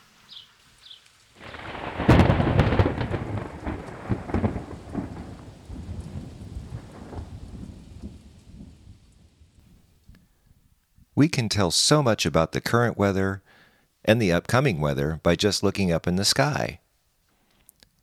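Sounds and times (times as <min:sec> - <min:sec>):
steady heavy rain hissing: 0:00.0 - 0:07.7
faint bird chirps: 0:00.2 - 0:01.1
loud crack of thunder rolling and rumbling: 0:01.4 - 0:09.6
speech: 0:11.2 - 0:16.8.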